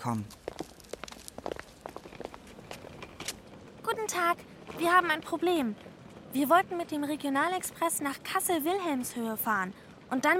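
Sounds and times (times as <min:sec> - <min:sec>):
speech: 0:00.0 - 0:00.4, 0:04.0 - 0:10.3
light footsteps walking toward a ticket counter at a railway station: 0:00.0 - 0:07.0.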